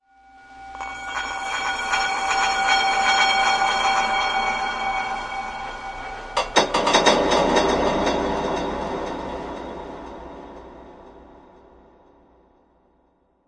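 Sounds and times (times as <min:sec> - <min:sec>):
bowls clanging like bells with reverb: 0:00.7 - 0:09.9.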